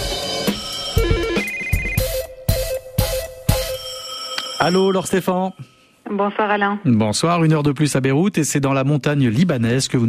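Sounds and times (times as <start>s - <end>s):
sharp regular percussive beats: 0.0s - 3.9s
telephone ringing with an electronic melodic ringtone: 0.8s - 5.6s
speech: 4.6s - 10.0s.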